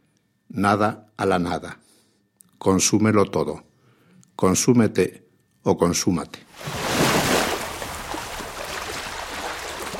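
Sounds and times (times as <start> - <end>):
speech: 0.6 - 1.9, 2.6 - 3.7, 4.4 - 6.8
sea waves at Almería: 6.6 - 9.9.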